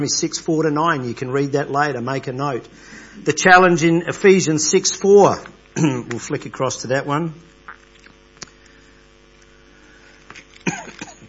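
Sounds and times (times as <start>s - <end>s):
speech: 0.0s - 7.5s
low steady electrical hum: 0.0s - 11.2s
person coughing with harsh breathy hacks: 5.8s - 6.2s, 10.6s - 11.2s
throat clearing: 5.8s - 6.2s, 10.5s - 11.2s.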